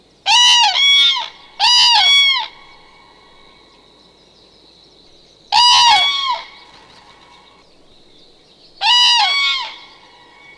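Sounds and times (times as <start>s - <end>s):
common crane trumpeting calls: 0.3s - 3.6s, 5.5s - 7.9s, 8.8s - 10.5s.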